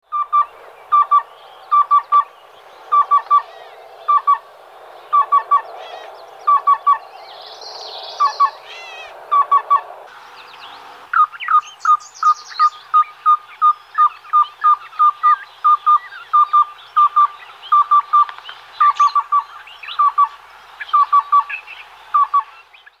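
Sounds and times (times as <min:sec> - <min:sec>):
black-billed cuckoo calling: 0:00.1 - 0:02.3, 0:02.9 - 0:03.5, 0:04.1 - 0:04.4, 0:06.5 - 0:07.0, 0:08.2 - 0:09.8, 0:11.1 - 0:22.6.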